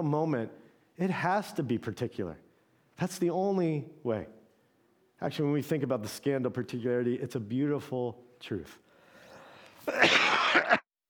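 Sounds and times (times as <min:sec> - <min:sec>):
speech: 0:00.0 - 0:02.4, 0:03.0 - 0:04.4, 0:05.2 - 0:08.8, 0:09.8 - 0:10.8
loud raspy cough from a speaker: 0:09.8 - 0:10.8.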